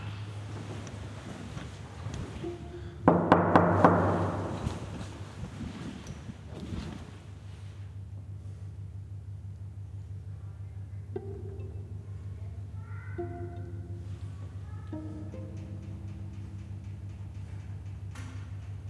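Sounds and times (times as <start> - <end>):
steady low hum: 0.0 - 18.8
sharp knocking on an apartment door: 3.1 - 4.7.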